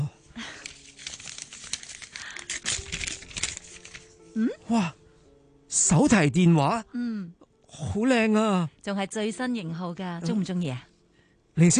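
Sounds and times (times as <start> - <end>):
gift wrapping crinkling and tearing as a gift is unwrapped by hand: 0.4 - 4.3
speech: 4.4 - 5.0, 5.8 - 10.9, 11.6 - 11.7.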